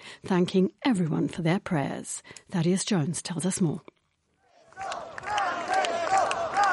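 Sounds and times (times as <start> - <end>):
speech: 0.2 - 4.0
crowd of well-wishers shouting and cheering outside a hospital: 4.6 - 6.7.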